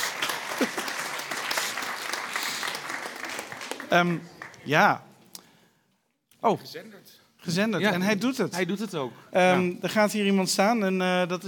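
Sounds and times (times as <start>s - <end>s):
crowd applause: 0.0s - 4.7s
speech: 0.6s - 0.8s, 3.9s - 5.1s, 6.4s - 11.4s.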